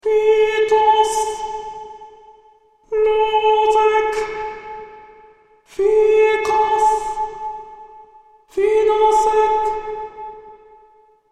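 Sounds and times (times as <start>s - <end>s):
alto chant soundtrack: 0.0s - 10.8s.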